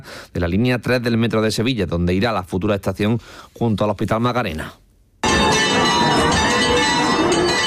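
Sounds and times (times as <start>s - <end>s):
speech: 0.0s - 4.8s
church bells ringing in a village: 5.2s - 7.6s.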